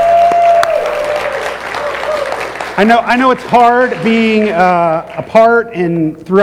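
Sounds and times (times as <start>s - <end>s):
room full of people applauding: 0.0s - 5.5s
speech: 2.8s - 6.4s.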